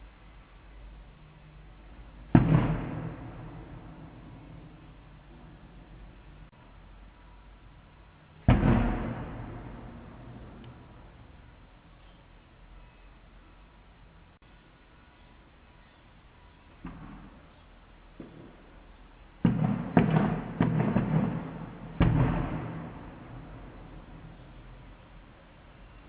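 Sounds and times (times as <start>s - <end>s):
Diana pirotecnica firecracker salvo set off to honour a patron saint: 1.9s - 6.6s, 8.4s - 11.7s, 16.7s - 26.0s.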